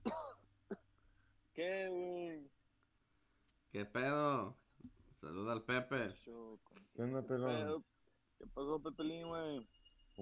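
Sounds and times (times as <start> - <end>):
person clearing throat: 0.0 - 0.9
person coughing: 0.0 - 0.9
speech: 1.6 - 2.1, 3.7 - 4.6, 5.2 - 10.2.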